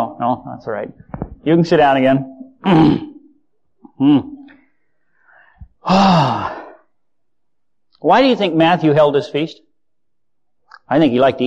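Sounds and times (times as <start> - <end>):
speech: 0.0 - 3.1, 4.0 - 4.5, 5.8 - 6.6, 8.0 - 9.7, 10.9 - 11.4
group of people yawning: 5.8 - 6.8.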